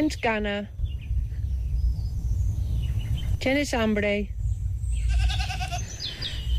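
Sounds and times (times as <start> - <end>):
speech: 0.0 - 0.8, 3.4 - 4.4
steady low rumble: 0.0 - 6.5
goats bleating at a farm in Catalonia's Garrotxa region: 5.1 - 6.0.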